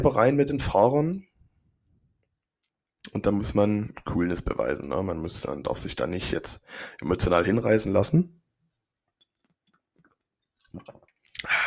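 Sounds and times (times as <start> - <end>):
speech: 0.0 - 1.3, 3.0 - 8.4, 10.7 - 11.6
wet mouth clicks and slurping from a sip of a drink: 9.2 - 11.6
breathy swallow and exhale: 10.6 - 11.6.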